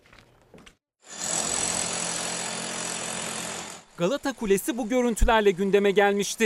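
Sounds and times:
power drill grinding into an interior wall: 1.0 - 4.0
speech: 4.0 - 6.4.

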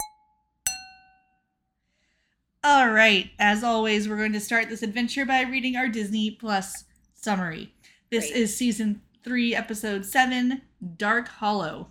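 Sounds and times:
wine glasses clinking in a toast: 0.0 - 1.3
speech: 2.6 - 11.8.

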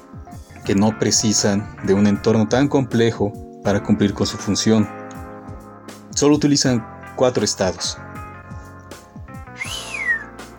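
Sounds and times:
speech: 0.3 - 5.0, 6.2 - 8.0
person whistling: 9.5 - 10.4.

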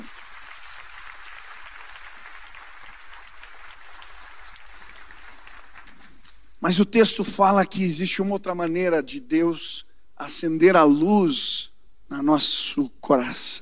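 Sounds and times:
audience applauding at a church service: 0.0 - 6.2
speech: 6.6 - 13.6.

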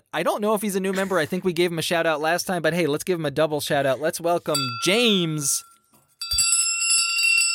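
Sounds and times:
speech: 0.1 - 5.7
loud big bell ringing: 4.6 - 7.5.

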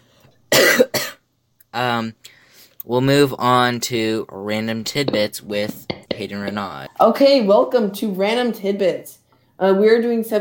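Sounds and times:
person coughing harshly: 0.5 - 1.2
speech: 1.8 - 10.4
breathy exhale: 2.3 - 2.8.

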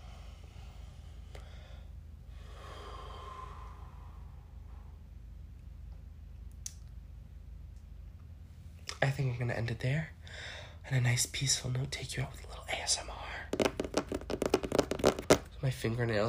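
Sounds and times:
deep breath in a slow breathing exercise: 0.0 - 5.1, 10.2 - 10.8
steady low hum: 0.0 - 16.2
speech: 9.0 - 13.7, 15.6 - 16.2.

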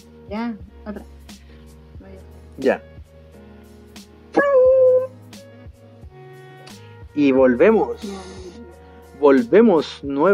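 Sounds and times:
speech: 0.3 - 1.3, 2.1 - 2.9, 7.2 - 8.6, 9.2 - 10.3
small female dog yipping and whimpering: 4.4 - 5.2.

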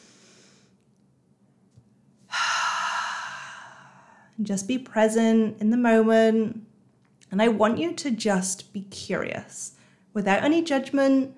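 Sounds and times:
deep inhalation: 2.3 - 4.4
speech: 4.4 - 6.7, 7.3 - 11.3.

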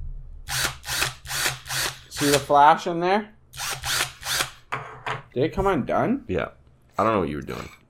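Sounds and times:
steady low electrical hum: 0.0 - 7.8
brushed power drill whirring: 0.5 - 2.5, 3.5 - 4.6
speech: 2.2 - 3.4, 5.3 - 7.8.

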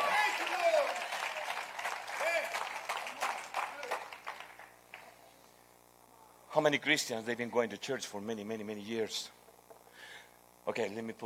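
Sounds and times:
congregation applauding: 0.0 - 5.2
speech: 6.6 - 9.4, 10.6 - 11.2.

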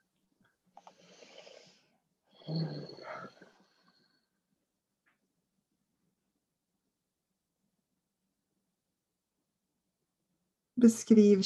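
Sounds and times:
slow deep breathing: 0.8 - 4.4
speech: 2.5 - 3.3, 10.8 - 11.4.

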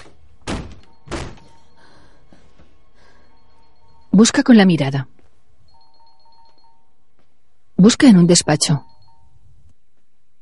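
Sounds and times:
person with hands bound by zip ties pounding on a door: 0.4 - 1.5
speech: 4.2 - 5.2, 7.8 - 8.9.

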